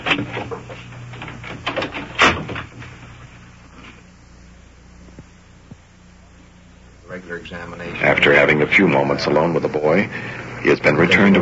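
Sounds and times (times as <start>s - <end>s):
door being pushed closed: 0.0s - 3.0s
low steady hum: 0.0s - 11.4s
speech: 0.2s - 0.8s, 7.2s - 11.4s.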